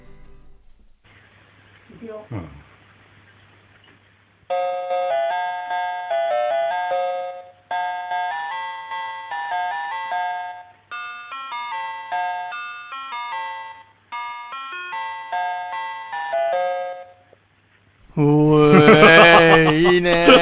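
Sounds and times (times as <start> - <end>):
speech: 1.9 - 2.7, 18.2 - 20.4
home intercom doorbell playing a melodic chime tune: 4.5 - 17.3
laughter: 18.2 - 20.4.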